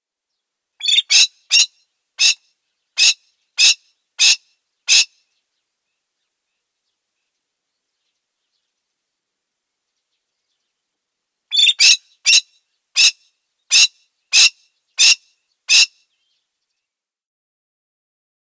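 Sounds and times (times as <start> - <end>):
male golden pheasant display call: 0.8 - 2.4, 3.0 - 5.1, 11.5 - 16.2.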